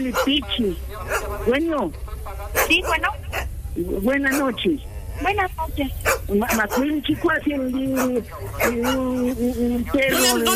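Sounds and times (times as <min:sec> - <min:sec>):
small dog barking and yipping: 0:00.0 - 0:00.4, 0:01.1 - 0:01.4, 0:02.6 - 0:03.5, 0:04.2 - 0:04.6, 0:06.0 - 0:07.0, 0:07.8 - 0:09.3
speech: 0:00.0 - 0:02.0, 0:02.7 - 0:10.5.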